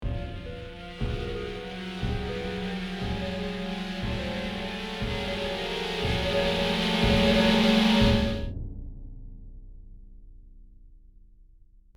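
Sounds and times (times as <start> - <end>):
horror ambience building tension: 0.4 - 8.5.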